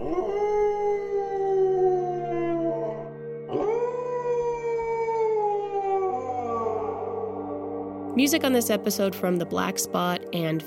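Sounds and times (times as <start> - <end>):
eerie ghost-like howls sliding downward in pitch: 0.0 - 8.2
speech: 8.2 - 10.6.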